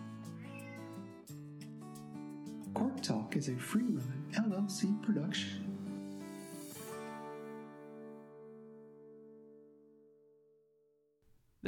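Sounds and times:
cat meowing: 0.3s - 1.1s
speech: 2.8s - 5.7s.

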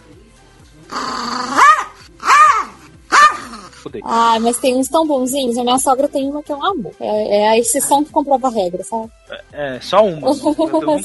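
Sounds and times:
pinscher dog growling: 0.9s - 4.6s
pinscher dog barking: 1.4s - 3.7s
speech: 3.8s - 11.0s
laughter: 10.2s - 11.0s.

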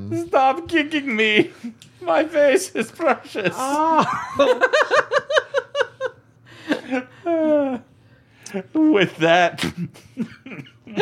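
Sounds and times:
speech: 0.1s - 5.4s, 8.5s - 11.0s
laughter: 1.0s - 7.9s, 8.5s - 11.0s
person coughing: 9.6s - 10.5s.

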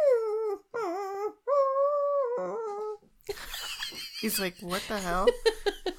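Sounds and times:
voice imitating puppy whimpers and howls: 0.0s - 3.0s
laughter: 3.3s - 5.9s
speech: 4.2s - 5.9s.

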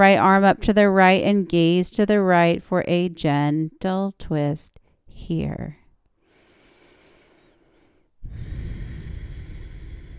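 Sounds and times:
speech: 0.0s - 5.8s
deep slow belly breathing: 6.2s - 10.1s.

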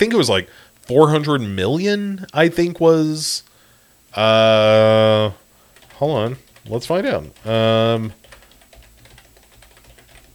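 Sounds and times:
speech: 0.0s - 3.5s, 4.1s - 5.4s, 6.0s - 8.2s
rapid typing on a computer keyboard with plastic keys: 5.8s - 6.8s, 8.2s - 10.3s.

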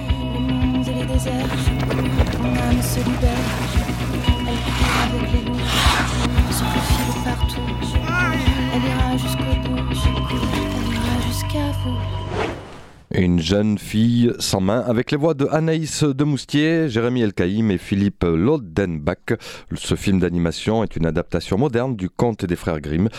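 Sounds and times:
sustained music: 0.0s - 12.3s
horse hooves clip-clopping: 0.9s - 4.6s
speech: 1.2s - 2.0s, 2.9s - 3.9s, 13.2s - 23.1s.

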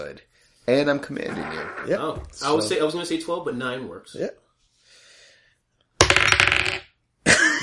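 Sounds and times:
speech: 0.0s - 4.4s
dice clattering across a hard tabletop: 6.0s - 6.9s.

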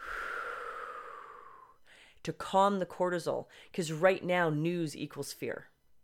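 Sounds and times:
slow deep breath in and out: 0.0s - 2.2s, 3.5s - 3.7s
speech: 2.2s - 5.7s.

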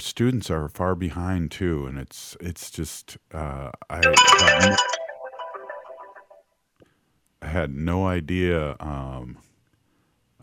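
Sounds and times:
speech: 0.0s - 5.0s, 7.5s - 9.5s
telephone ringtone playing a bright electronic melody: 4.0s - 6.3s.

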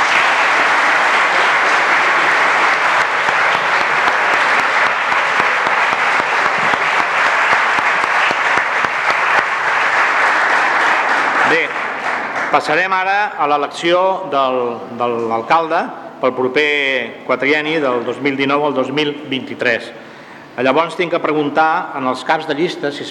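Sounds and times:
audience applause at municipal council constitution in Ripollet: 0.0s - 13.0s
speech: 12.5s - 23.0s.

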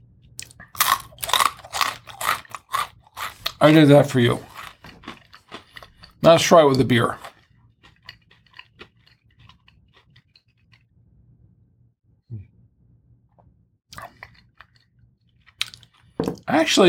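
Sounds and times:
low steady hum: 0.0s - 16.8s
crunchy pretzel being chewed: 0.4s - 10.9s, 13.9s - 16.2s
speech: 3.6s - 4.5s, 6.2s - 7.3s, 16.6s - 16.8s.

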